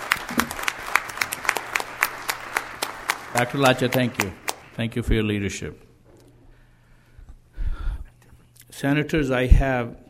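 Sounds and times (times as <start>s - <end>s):
small audience applause: 0.0s - 4.9s
speech: 3.4s - 5.9s, 8.8s - 10.0s.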